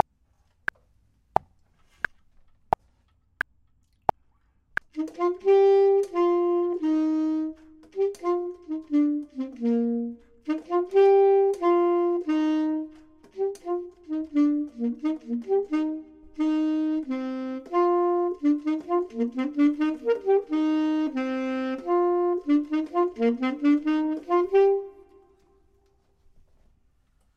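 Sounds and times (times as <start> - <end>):
saxophone: 4.8 - 26.1
clarinet: 4.9 - 26.0.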